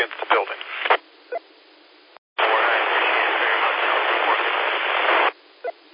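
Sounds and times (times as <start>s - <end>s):
loud steady radio static through a narrow tinny channel: 0.0s - 1.4s, 2.4s - 5.9s.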